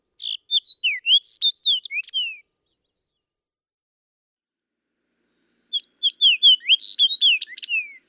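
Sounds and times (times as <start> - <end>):
fox sparrow: 0.0 - 3.7, 4.6 - 8.0.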